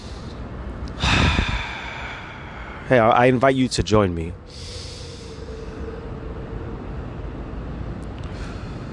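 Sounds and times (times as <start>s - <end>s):
deep breath: 0.0s - 3.0s, 4.4s - 6.2s, 8.2s - 8.9s
speech: 2.9s - 4.8s.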